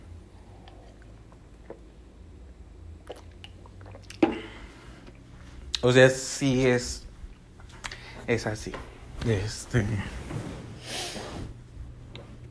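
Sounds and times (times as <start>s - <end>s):
low hum: 0.0s - 12.4s
person sipping water: 0.3s - 2.0s, 3.0s - 5.8s
speech: 5.8s - 7.0s, 8.3s - 10.5s.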